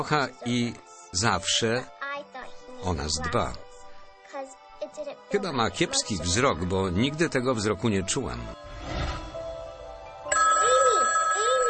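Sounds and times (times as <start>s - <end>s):
speech: 0.0s - 2.0s, 2.8s - 3.6s, 4.9s - 9.0s
telephone electronic ringtone warbling in a home: 10.3s - 11.6s.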